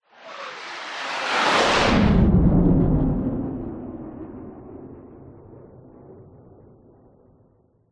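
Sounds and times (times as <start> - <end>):
fighter jet passing by fast: 0.1 - 6.2.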